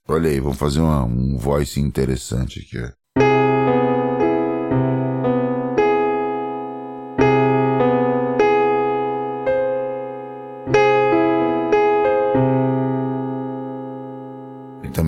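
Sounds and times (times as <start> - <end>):
speech: 0.1 - 3.0
augmented major seventh chord on a keyboard: 3.2 - 15.0.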